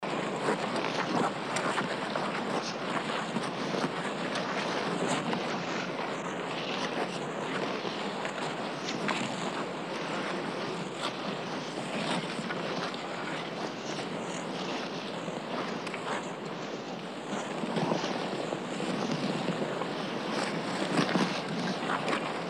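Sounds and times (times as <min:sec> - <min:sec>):
skating: 0:00.0 - 0:22.4.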